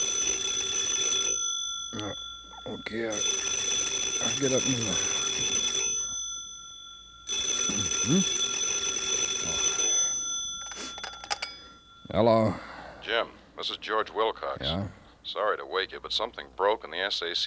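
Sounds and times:
telephone ringing beside bed in electronic bursts: 0:00.0 - 0:12.4
speech: 0:02.6 - 0:03.6, 0:04.2 - 0:05.6, 0:08.0 - 0:08.4, 0:12.1 - 0:17.4.

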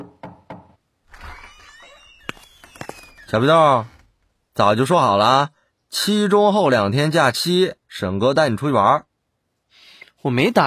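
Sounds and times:
knocking on a dormitory door: 0:00.0 - 0:00.8
speech: 0:03.3 - 0:03.9, 0:04.6 - 0:09.1, 0:10.2 - 0:10.6.

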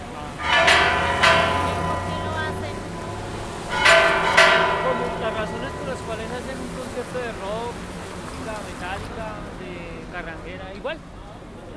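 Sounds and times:
church bells ringing in Bogotá between San Francisco and La Candelaria: 0:00.0 - 0:09.1.

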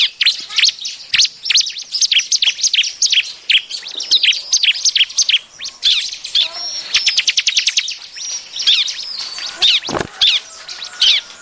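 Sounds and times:
bar-winged prinia chattering as a lure call for trapping birds: 0:00.0 - 0:11.4.

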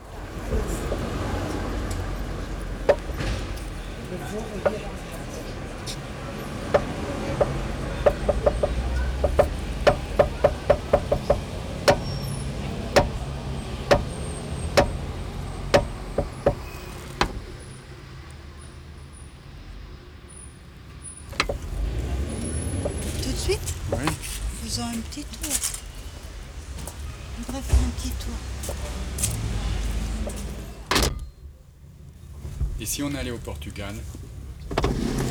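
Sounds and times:
car door opening and shutting: 0:00.2 - 0:05.0, 0:05.8 - 0:17.8, 0:21.3 - 0:24.5, 0:27.7 - 0:31.6, 0:34.2 - 0:35.2
speech: 0:04.3 - 0:05.0, 0:32.9 - 0:34.2.

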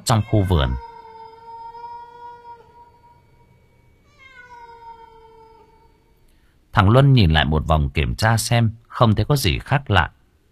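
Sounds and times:
cat meowing: 0:00.0 - 0:06.2
hiss: 0:00.0 - 0:10.5
speech: 0:00.1 - 0:00.8, 0:06.8 - 0:10.2.

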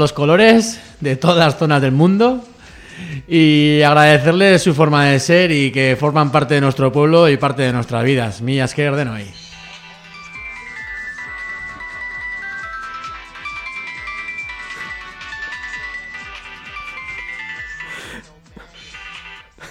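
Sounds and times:
speech: 0:00.0 - 0:09.4
mobile phone electronic ringtone melody over a repeating beat: 0:09.3 - 0:19.7.

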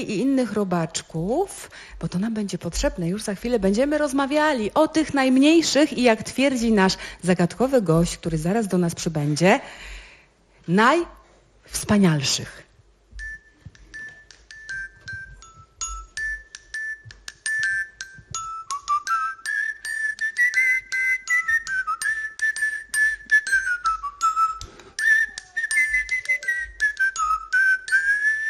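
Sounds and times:
speech: 0:00.0 - 0:10.0, 0:10.7 - 0:12.6
tuned metal bells in a pentatonic set struck in a melody: 0:13.1 - 0:28.2.

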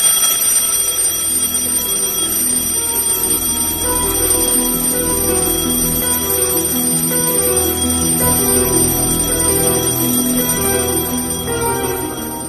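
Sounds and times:
alarm clock ringing: 0:00.0 - 0:12.4.

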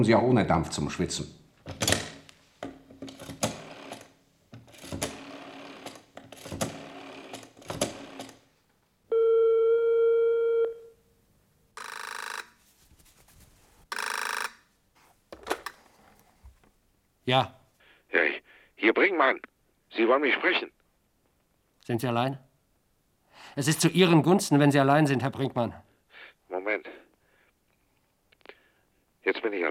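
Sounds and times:
speech: 0:00.0 - 0:01.8, 0:17.3 - 0:17.5, 0:19.2 - 0:20.8, 0:21.9 - 0:22.5, 0:23.4 - 0:25.9, 0:29.2 - 0:29.7
telephone being dialed, mechanical clicking: 0:03.0 - 0:08.4, 0:11.8 - 0:12.4
steady bright harmonic telephone tone: 0:09.1 - 0:11.0, 0:11.8 - 0:12.6, 0:13.9 - 0:14.6.

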